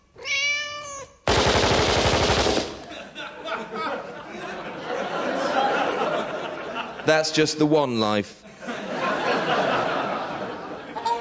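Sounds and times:
cat meowing: 0:00.0 - 0:01.2
rapid machine-gun fire: 0:01.3 - 0:02.9
laughter: 0:02.8 - 0:07.2, 0:08.5 - 0:11.1
speech: 0:07.1 - 0:08.4.

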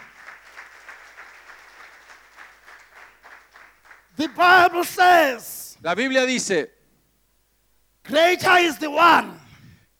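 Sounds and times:
crowd applauding with many hands clapping: 0:00.0 - 0:05.0
speech: 0:04.2 - 0:06.8, 0:08.1 - 0:09.4.

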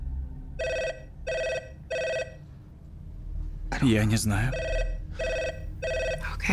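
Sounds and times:
telephone ringing: 0:00.6 - 0:02.4, 0:04.5 - 0:06.2
speech: 0:03.8 - 0:04.8.

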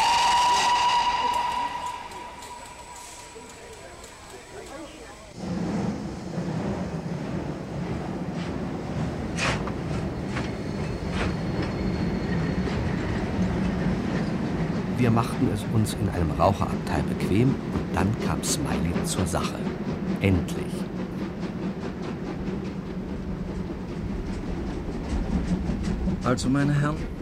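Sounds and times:
high whistle-like tone: 0:00.0 - 0:03.5
express train rumbling as it pulls out of a station: 0:00.0 - 0:27.2
speech: 0:15.1 - 0:21.0, 0:26.2 - 0:27.2.

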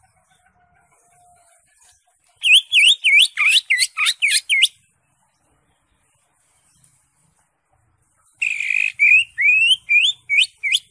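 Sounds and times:
Greater Green Leafbird song of slurred whistles: 0:02.3 - 0:04.9, 0:08.4 - 0:10.9.

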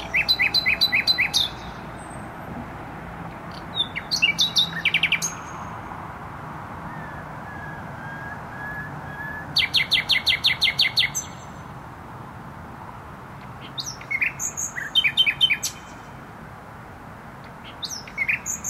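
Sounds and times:
nightingale singing in bushes: 0:00.0 - 0:02.2, 0:03.3 - 0:05.9, 0:06.8 - 0:11.8, 0:13.4 - 0:16.2, 0:17.4 - 0:18.6
continuous motorway traffic noise: 0:00.0 - 0:18.6.

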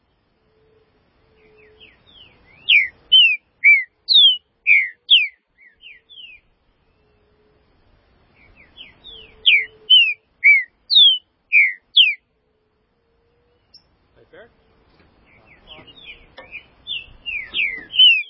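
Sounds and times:
green-winged saltator song of clear whistled notes: 0:02.6 - 0:06.4, 0:09.0 - 0:12.2, 0:17.0 - 0:18.2.

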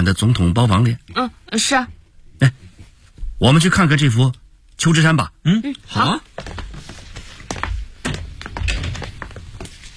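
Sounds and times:
speech: 0:00.0 - 0:02.6, 0:03.4 - 0:06.6
thick hotel suite door opening: 0:08.0 - 0:09.3.

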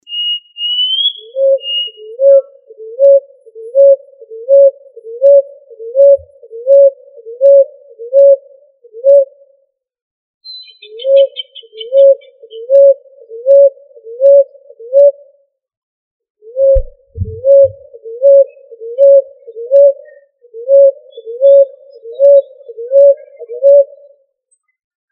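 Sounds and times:
pigeon cooing: 0:01.3 - 0:09.3, 0:10.9 - 0:15.2, 0:16.5 - 0:24.1.

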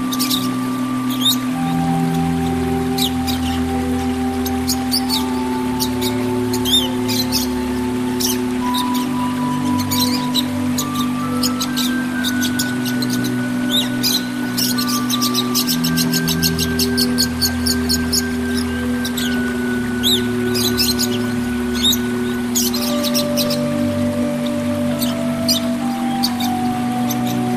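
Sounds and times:
Oriental magpie-robin singing squeaky, buzzy high notes: 0:00.0 - 0:27.5
continuous low humming: 0:00.0 - 0:27.5.

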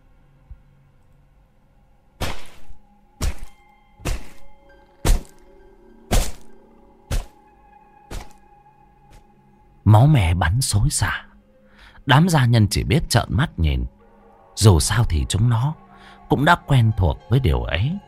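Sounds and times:
wooden cane struck down hard in a beating: 0:02.2 - 0:05.4, 0:06.1 - 0:06.5, 0:07.1 - 0:07.4, 0:08.1 - 0:08.4
speech: 0:09.9 - 0:11.3, 0:12.0 - 0:14.0, 0:14.6 - 0:18.0.

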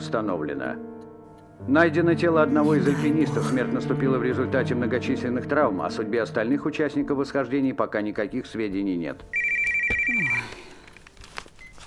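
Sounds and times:
speech: 0:00.1 - 0:00.9, 0:01.6 - 0:09.5, 0:10.1 - 0:10.6
telephone ringing with a shrill electronic tone: 0:09.3 - 0:10.7
rustling: 0:10.5 - 0:11.8.

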